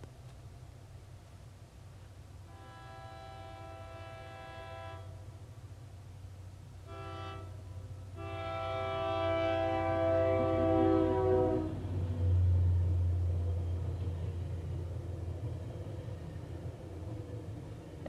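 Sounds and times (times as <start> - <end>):
commuter train rumbling past: 0.0 - 18.0
commuter train horn blaring: 2.5 - 5.2, 6.8 - 12.0.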